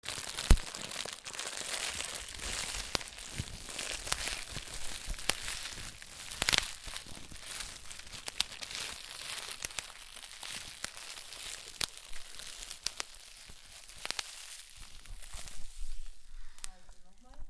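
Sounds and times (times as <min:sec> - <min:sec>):
fire burning: 0:00.0 - 0:17.4.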